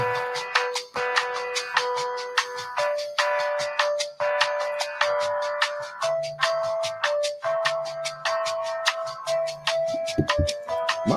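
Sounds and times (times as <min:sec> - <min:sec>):
bright electronic music cue with plucky bell-like notes: 0:00.0 - 0:11.1.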